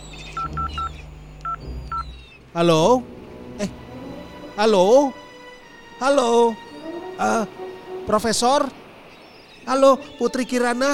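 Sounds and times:
keypad beeps from a wristwatch being used to dial a call: 0.3 - 2.1
speech: 2.6 - 3.8, 4.6 - 5.2, 6.0 - 6.6, 7.2 - 8.8, 9.6 - 10.9.

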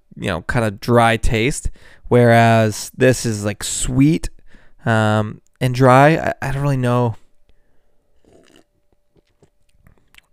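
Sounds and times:
speech: 0.2 - 7.2
slurping sip of beer: 8.2 - 10.3
soft swallowing of beer: 8.2 - 10.3
wet mouth clicks: 8.2 - 10.3.

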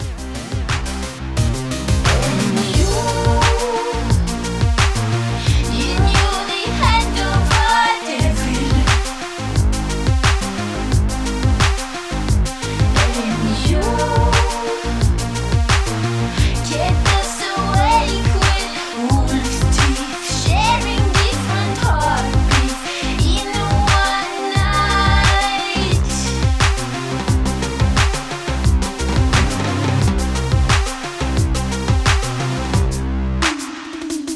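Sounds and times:
electronic pop song: 0.0 - 34.3.

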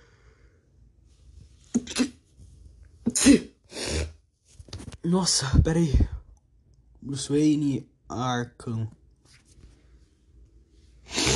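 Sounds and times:
person sneezing: 1.7 - 2.2, 3.1 - 4.2, 11.1 - 11.3
person sniffing: 1.7 - 2.2, 3.1 - 4.2, 11.0 - 11.3
speech: 5.1 - 6.1, 7.1 - 9.0.

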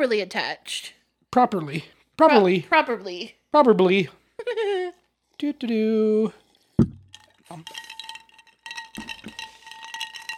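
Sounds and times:
speech: 0.0 - 7.9
ice cubes clinking in a glass: 7.1 - 10.3.

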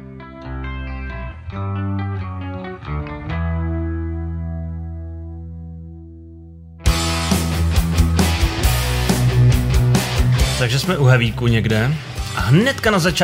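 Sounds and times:
heavy metal guitars chugging bass-heavy palm-muted chords: 0.0 - 6.2, 6.8 - 13.2
full band drums and cymbals: 6.9 - 10.6
speech: 10.6 - 13.2.

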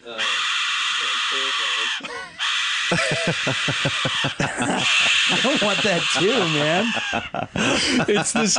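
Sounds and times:
speech: 0.0 - 0.3, 1.5 - 8.5
loud harsh Aztec whistle shrieking: 0.1 - 3.8, 4.9 - 6.9
people talking and laughing: 2.0 - 8.5.

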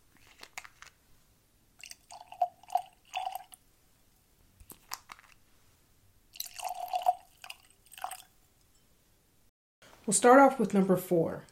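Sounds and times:
beer pouring into tasting glasses: 1.8 - 3.6, 6.3 - 8.4
speech: 10.1 - 11.4.

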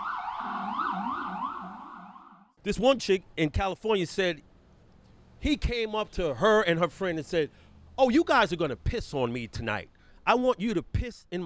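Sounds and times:
emergency vehicle sirens wailing outside: 0.0 - 2.6
speech: 2.6 - 4.5, 5.4 - 11.4.

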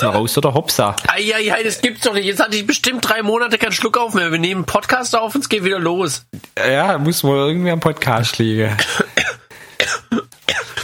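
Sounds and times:
speech: 0.0 - 10.2
person coughing: 8.8 - 10.8.

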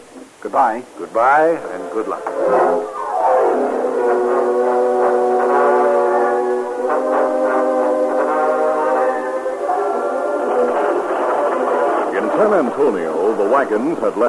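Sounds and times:
speech: 0.4 - 3.0, 12.4 - 14.2
train whistle: 1.6 - 12.6.

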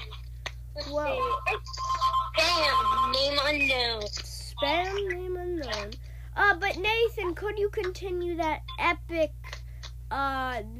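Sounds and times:
speech: 0.8 - 1.8, 2.6 - 9.4, 10.1 - 10.7
phone ringtone ringing for an incoming call: 1.1 - 3.3.

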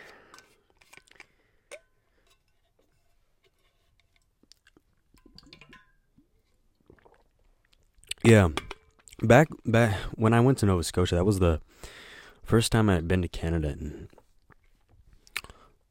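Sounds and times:
person sipping water: 4.1 - 8.2, 14.1 - 15.7
wet mouth clicks and gulps: 4.4 - 5.8, 6.7 - 9.2, 14.1 - 15.7
speech: 8.2 - 8.6, 9.2 - 14.2.

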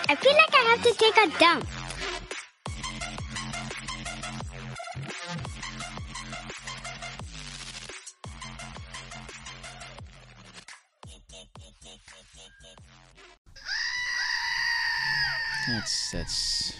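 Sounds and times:
speech: 0.1 - 1.7
screaming goat toy being squeezed: 13.5 - 16.7.

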